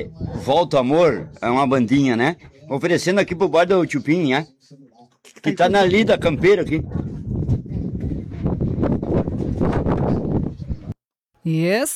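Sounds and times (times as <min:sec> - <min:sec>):
wind buffeting a microphone at a bar on a windy day: 0:00.0 - 0:01.6, 0:05.6 - 0:11.0
speech: 0:00.0 - 0:07.6, 0:11.4 - 0:11.9.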